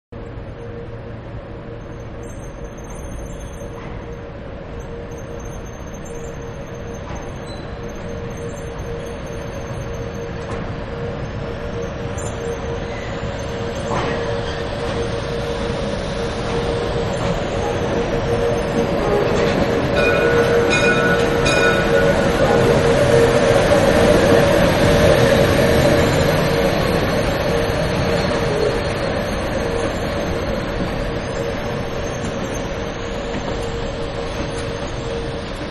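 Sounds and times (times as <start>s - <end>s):
diesel train departing end of track: 0.2s - 35.6s.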